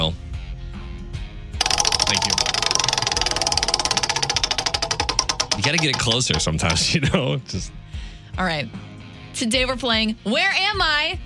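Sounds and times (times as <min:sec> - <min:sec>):
prize wheel spinning during a call-in prize game: 0:01.6 - 0:07.0
speech: 0:05.6 - 0:07.8, 0:08.4 - 0:11.2.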